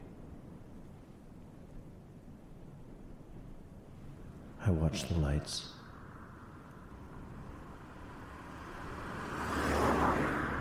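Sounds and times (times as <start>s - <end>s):
speech: 4.6s - 5.8s
road noise: 4.6s - 10.5s
single car passing by: 6.1s - 10.5s.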